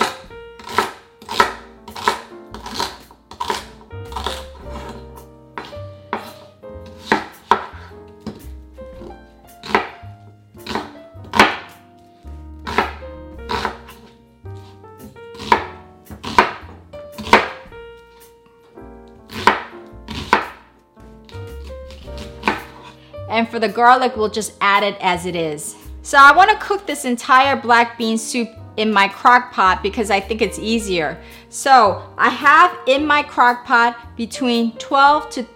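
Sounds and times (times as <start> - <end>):
knife chopping celery into medium-sized pieces against a board: 0.0 - 5.0, 5.6 - 10.0, 10.6 - 11.8, 12.6 - 14.7, 15.3 - 17.7, 19.3 - 22.9
speech: 23.4 - 35.5.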